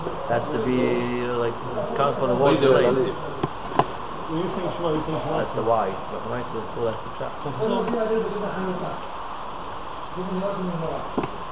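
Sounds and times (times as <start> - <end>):
speech: 0.3 - 3.4, 4.3 - 9.2, 10.2 - 11.4
rain: 3.0 - 11.4.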